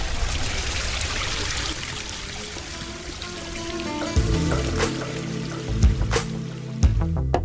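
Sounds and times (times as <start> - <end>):
water trickling: 0.0 - 7.3.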